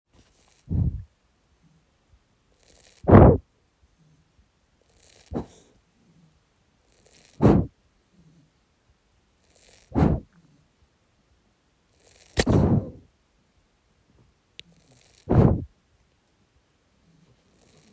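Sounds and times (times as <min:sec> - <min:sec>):
crackling in breath: 0:02.6 - 0:04.3, 0:04.9 - 0:08.6, 0:09.4 - 0:10.8, 0:11.9 - 0:13.1, 0:14.6 - 0:15.7, 0:17.0 - 0:17.9.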